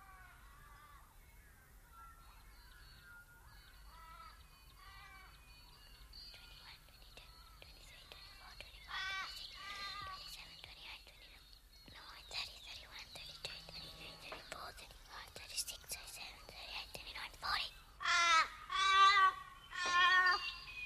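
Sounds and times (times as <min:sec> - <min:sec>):
loud harsh crow caws: 0:03.9 - 0:05.3, 0:08.9 - 0:10.2, 0:18.0 - 0:20.6
faint whispering: 0:06.2 - 0:17.9.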